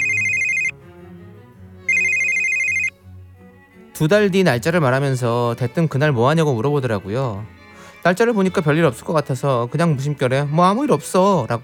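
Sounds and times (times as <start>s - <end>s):
phone ringtone chiming for an incoming call: 0.0s - 0.8s, 1.9s - 2.9s
soft music: 0.0s - 11.6s
speech: 4.0s - 11.6s.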